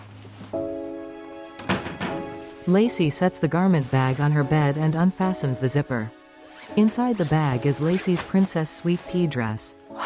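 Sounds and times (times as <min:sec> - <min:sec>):
closet door being closed with a muffled thud: 0:01.5 - 0:02.6
speech: 0:02.7 - 0:10.0.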